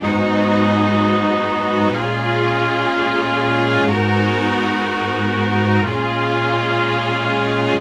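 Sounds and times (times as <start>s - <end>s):
strings: 0.0s - 7.7s.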